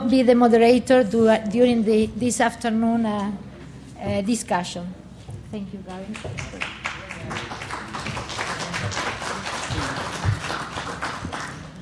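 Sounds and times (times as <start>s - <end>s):
speech: 0.1s - 7.5s
audience at a panel discussion applauding: 6.1s - 11.8s.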